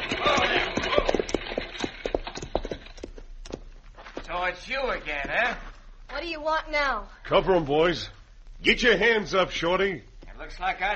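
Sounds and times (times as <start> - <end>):
buckboard wagon rumbling and rattling: 0.0 - 3.2
several horses clopping: 0.0 - 5.5
speech: 4.4 - 10.9.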